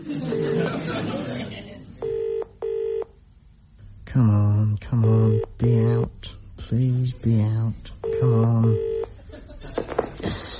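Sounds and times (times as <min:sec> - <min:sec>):
laughter: 0:00.0 - 0:02.0, 0:09.1 - 0:10.5
room noise: 0:00.0 - 0:10.5
speech: 0:00.1 - 0:01.6, 0:04.1 - 0:09.0
DTMF telephone dialing tones: 0:02.0 - 0:03.2, 0:08.0 - 0:09.2.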